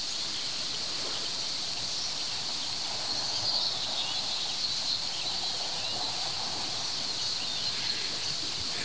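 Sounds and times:
bird singing outdoors: 0.0s - 8.8s
faint chirps: 0.0s - 8.8s.

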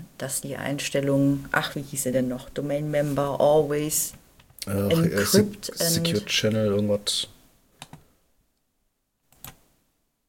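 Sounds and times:
speech: 0.2s - 7.4s
computer mouse clicking: 7.8s - 8.0s, 9.3s - 9.6s
computer keyboard typing: 9.4s - 9.6s.

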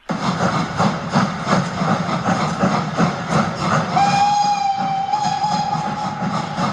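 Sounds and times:
steam locomotive chugging with rhythmic chuffing: 0.0s - 6.7s
long sustained steam locomotive whistle: 3.9s - 6.7s.

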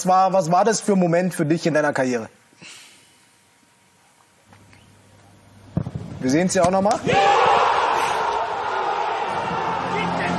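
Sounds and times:
speech: 0.0s - 2.8s, 6.2s - 7.6s
large stadium crowd cheering a match-winning free-kick goal: 7.0s - 10.3s.

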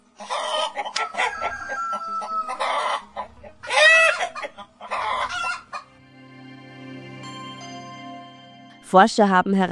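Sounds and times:
chickens clucking and squawking: 0.0s - 6.3s
speech: 8.9s - 9.6s.

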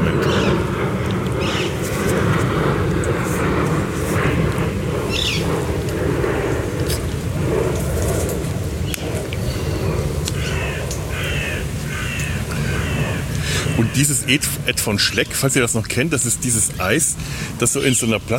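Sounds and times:
crows cawing: 0.0s - 1.8s, 5.0s - 5.6s, 8.8s - 14.5s
airplane passing overhead with low rumble: 0.0s - 18.3s
birds calling: 0.0s - 18.3s
speech: 14.0s - 18.3s.

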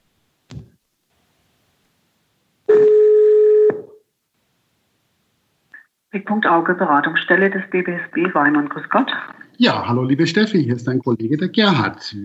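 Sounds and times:
ringback tone from outgoing phone call through smart speaker: 2.7s - 4.0s
speech: 6.2s - 12.2s.

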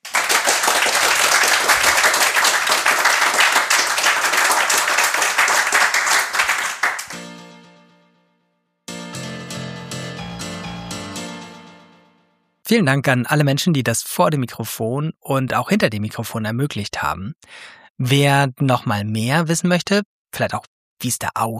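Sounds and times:
large crowd applauding: 0.0s - 7.2s
music with sustained tones and rhythmic hits: 7.1s - 12.5s
speech: 12.7s - 21.5s.

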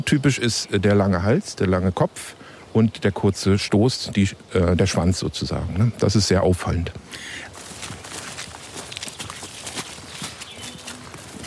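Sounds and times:
faint outdoor noise: 0.0s - 11.4s
speech: 0.1s - 7.4s
quick footsteps on a leafy forest floor: 7.4s - 11.4s.

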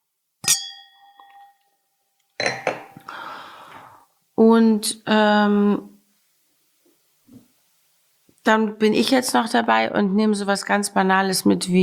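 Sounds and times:
two champagne glasses clinking: 0.4s - 1.7s, 2.4s - 3.1s
speech: 4.4s - 5.9s, 8.4s - 11.8s.

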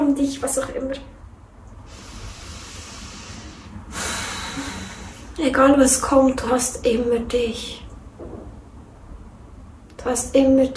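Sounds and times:
speech: 0.2s - 1.2s, 5.4s - 7.8s, 10.0s - 10.7s
deep breathing in and out: 1.8s - 5.4s.

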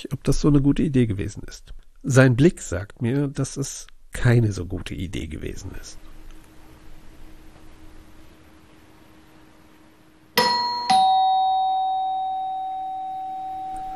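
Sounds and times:
speech: 0.0s - 6.1s
room hum: 0.0s - 13.9s
two-tone doorbell chime: 10.4s - 13.9s.

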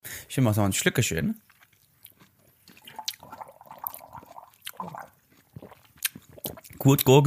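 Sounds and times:
speech: 0.3s - 1.6s, 6.8s - 7.2s
chewing noises: 1.4s - 7.2s
wet lip smacking: 1.4s - 7.2s.

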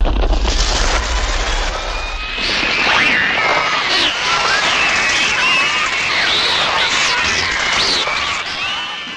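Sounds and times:
rumbling noisy background: 0.0s - 4.9s
children screaming: 0.6s - 9.1s.

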